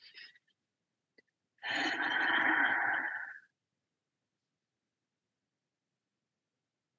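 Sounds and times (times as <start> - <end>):
deep breath in through the nose: 1.6 - 3.4.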